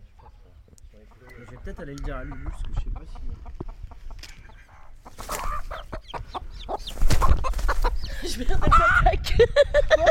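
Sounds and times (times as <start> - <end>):
hen clucking in agitated bursts near newly hatched chicks: 0.0 - 9.2
speech: 1.0 - 3.8, 8.3 - 10.0
person laughing: 8.0 - 10.0.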